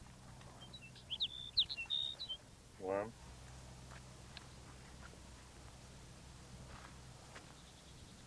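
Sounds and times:
sparrow singing: 0:00.3 - 0:02.5, 0:07.4 - 0:08.2
speech: 0:02.8 - 0:03.2.

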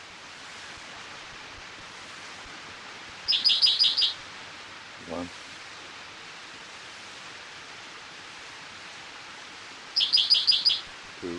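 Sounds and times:
spotted towhee calling beside a creek: 0:03.3 - 0:04.2, 0:10.0 - 0:10.9
speech: 0:05.2 - 0:05.4.

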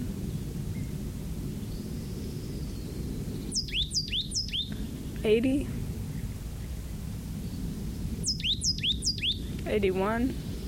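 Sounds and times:
constant low background rumble: 0:00.0 - 0:10.6
plain titmouse singing swooping phrases from live oaks: 0:03.5 - 0:05.4, 0:08.2 - 0:09.5
speech: 0:05.2 - 0:05.8, 0:09.7 - 0:10.4.

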